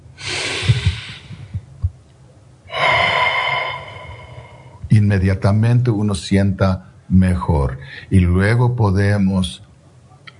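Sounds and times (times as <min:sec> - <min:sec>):
deep breath in and out: 0:00.0 - 0:01.6, 0:02.7 - 0:04.8
speech: 0:05.2 - 0:09.7.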